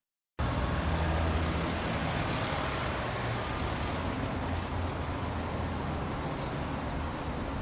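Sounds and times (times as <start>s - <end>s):
dense roar of street traffic with many cars and scooters: 0.4s - 7.5s.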